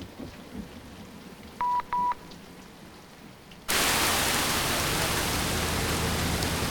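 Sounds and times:
heavy rain: 0.0 - 6.6
short electronic beeps: 1.6 - 2.2.

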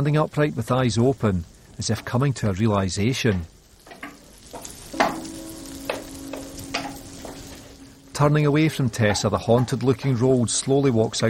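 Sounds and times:
speech: 0.0 - 3.6, 8.2 - 11.2
frying pan sizzling on a hob with flames: 0.0 - 11.2
sharp knocks or clinks: 3.9 - 7.5.

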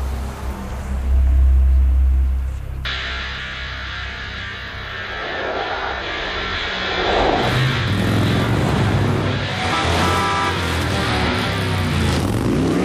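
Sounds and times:
large car engine rumbling as it pulls away: 0.0 - 12.5
road noise: 0.0 - 12.8.

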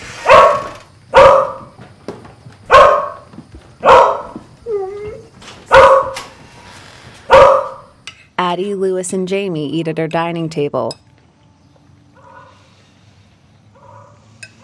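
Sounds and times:
dog gated in a kitchen barking: 0.2 - 1.8, 2.7 - 4.4, 5.7 - 6.3, 7.3 - 7.9, 12.2 - 12.6, 13.8 - 14.6
dog whining whimper: 4.6 - 5.4
speech: 8.5 - 11.0.

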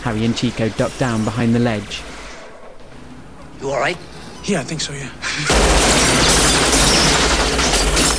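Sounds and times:
speech: 0.0 - 2.1, 3.6 - 6.3
rapid sustained gunfire sprayed at a neon sign: 5.5 - 8.1.

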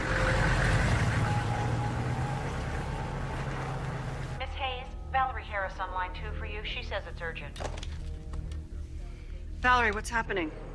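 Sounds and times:
large armed military vehicle engine rumble driving past: 0.0 - 6.7
speech: 5.6 - 8.0, 9.6 - 10.7.

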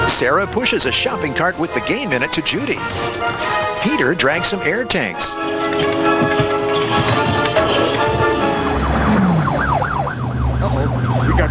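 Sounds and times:
speech: 0.2 - 6.4
police motorcycle siren wailing: 5.3 - 11.4.

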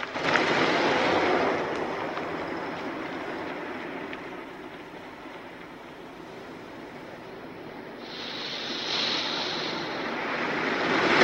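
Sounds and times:
van engine rumbling as it drives away: 0.0 - 11.1.

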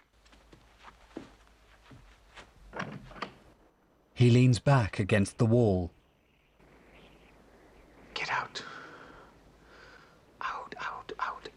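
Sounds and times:
door being opened with soft clunks and clicks: 2.7 - 3.4
speech: 4.2 - 6.0.

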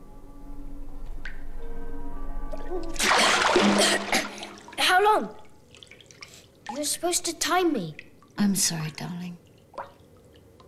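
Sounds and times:
faint water drips: 2.5 - 10.6
speech: 3.6 - 4.2, 5.1 - 5.4, 6.8 - 9.4.

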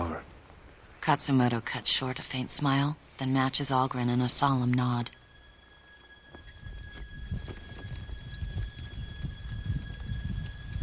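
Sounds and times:
speech: 1.0 - 5.2
horses galloping through smoke with riders: 6.4 - 10.8.

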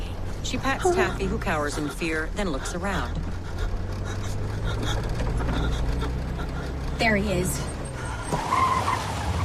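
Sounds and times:
car tires skidding as it pulls over: 0.2 - 9.4
speech: 0.5 - 3.3, 7.0 - 7.7.

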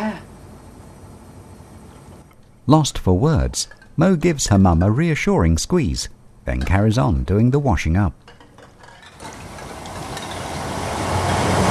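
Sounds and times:
speech: 2.7 - 8.4
trains trundling under a railway bridge: 9.2 - 11.7.

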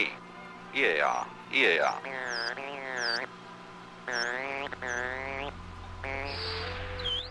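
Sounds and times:
steady low hum: 0.0 - 7.3
speech: 0.8 - 3.4, 4.1 - 5.2
dolphin whistles and chirps: 2.1 - 3.3, 4.1 - 7.3.

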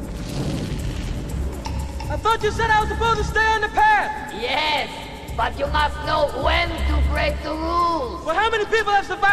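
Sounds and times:
bridge exploding in a ball of flame: 0.1 - 2.2
speech: 2.2 - 9.3.

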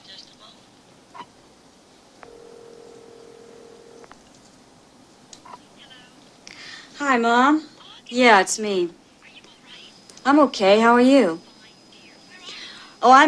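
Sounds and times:
low hiss: 0.0 - 13.2
short telephone beeps: 2.2 - 4.1
speech: 7.0 - 9.0, 10.3 - 11.5, 13.0 - 13.2.

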